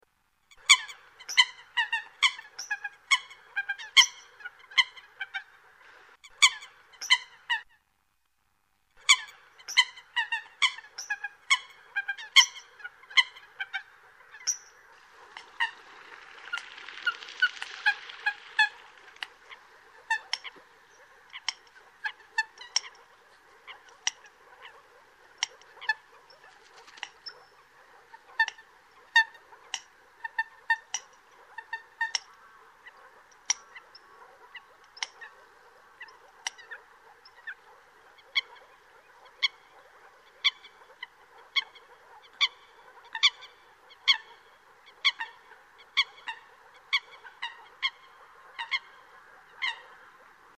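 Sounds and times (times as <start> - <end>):
coot: 0.5 - 7.8, 9.0 - 50.5.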